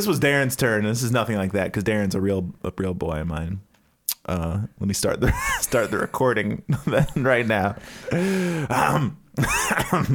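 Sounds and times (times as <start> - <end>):
speech: 0.0 - 10.1
person clearing throat: 8.7 - 10.1.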